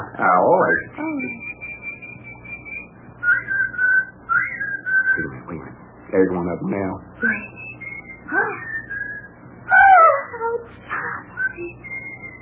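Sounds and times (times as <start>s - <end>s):
speech: 0.0s - 1.5s, 5.2s - 7.6s, 8.3s - 8.6s
whistled two-tone call of Australian two-tone weaver bird: 1.0s - 5.4s, 7.2s - 9.4s, 11.3s - 12.4s.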